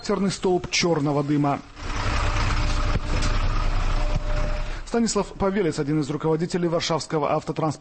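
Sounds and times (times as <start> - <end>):
speech: 0.0 - 2.0, 4.9 - 7.7
heavy city bus diesel engine roaring with automatic gearbox: 0.0 - 7.0.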